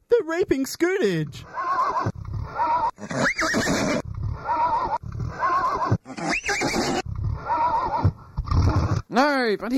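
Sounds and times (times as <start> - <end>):
speech: 0.2 - 2.2, 2.9 - 4.6, 9.1 - 9.7
police horses neighing and whinnying in Adelaide: 1.4 - 9.1.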